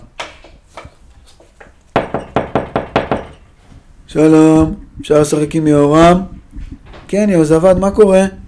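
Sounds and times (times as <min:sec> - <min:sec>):
knocking on a door: 0:02.0 - 0:03.4
speech: 0:04.1 - 0:06.4, 0:07.1 - 0:08.4.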